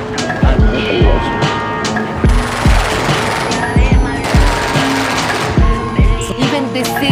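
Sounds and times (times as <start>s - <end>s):
constant noisy background: 0.0s - 7.0s
automatic gunfire bursts: 2.3s - 6.7s.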